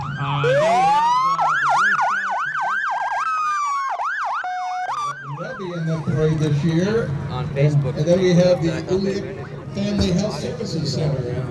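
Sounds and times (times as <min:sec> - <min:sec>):
ambulance, fire truck and police car sirens wailing in a parade: 0:00.0 - 0:11.4
low engine rumble of passing emergency vehicles: 0:05.2 - 0:11.4
speech: 0:06.4 - 0:11.4.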